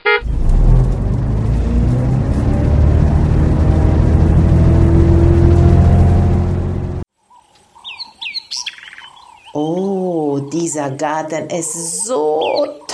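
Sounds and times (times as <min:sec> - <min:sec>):
bus engine droning on a bus ride: 0:00.0 - 0:07.0
speech: 0:10.5 - 0:12.8.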